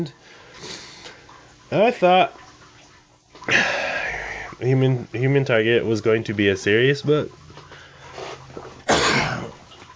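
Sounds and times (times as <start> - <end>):
speech: 0.0 - 0.4, 1.7 - 2.4, 3.4 - 3.8, 4.6 - 7.4
sharp cough picked up by a microphone: 8.9 - 9.6.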